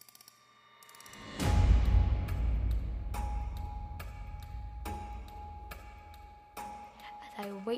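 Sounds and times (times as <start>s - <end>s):
low rumbling hum: 1.4s - 6.4s
large clock ticking: 1.4s - 6.6s
speech: 7.4s - 7.7s.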